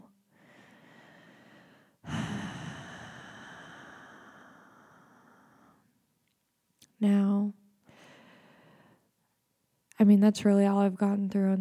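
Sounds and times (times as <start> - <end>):
slow deep breathing in and out: 0.3 - 5.9, 7.9 - 9.0
speech: 7.0 - 7.6, 10.0 - 11.5.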